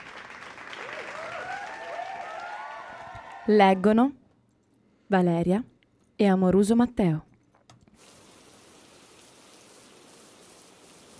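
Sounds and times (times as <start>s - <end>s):
speech: 3.5s - 4.2s, 5.1s - 7.3s
steady dense rain falling: 8.0s - 11.1s.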